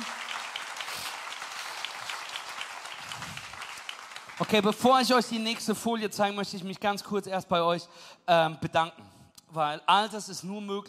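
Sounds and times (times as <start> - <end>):
crowd applauding: 0.0 - 5.6
speech: 4.4 - 10.8.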